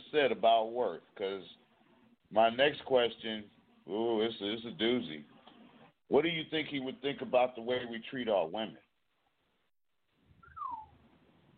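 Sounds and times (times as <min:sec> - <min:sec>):
speech: 0:00.1 - 0:01.6, 0:02.3 - 0:05.3, 0:06.1 - 0:08.8
person whistling sliding downward in pitch: 0:10.4 - 0:10.9.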